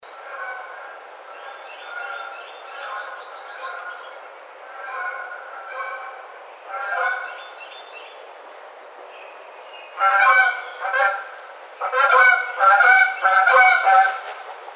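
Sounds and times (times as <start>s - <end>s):
Canada goose: 0.2s - 4.0s, 4.7s - 7.4s, 10.0s - 14.7s.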